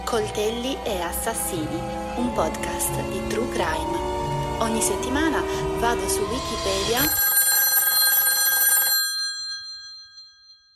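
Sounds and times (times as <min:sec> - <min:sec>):
speech: 0:00.1 - 0:07.3
studio telephone bell ringing: 0:07.0 - 0:10.7.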